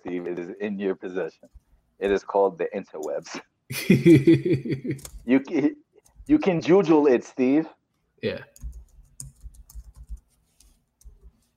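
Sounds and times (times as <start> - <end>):
speech: 0.1 - 8.6
laughter: 3.7 - 5.1
quick uneven typing on a computer keyboard: 8.6 - 11.4.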